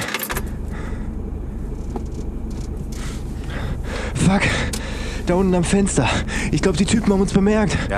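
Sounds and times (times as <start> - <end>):
car engine rumbling as the vehicle gets underway: 0.0 - 7.9
speech: 4.3 - 7.9.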